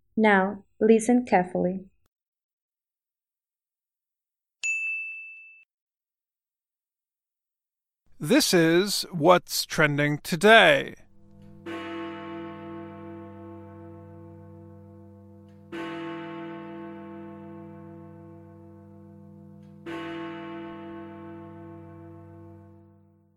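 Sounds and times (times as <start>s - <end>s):
speech: 0.2s - 1.9s, 8.2s - 11.0s
large clock tower bell striking the hour: 11.4s - 22.8s.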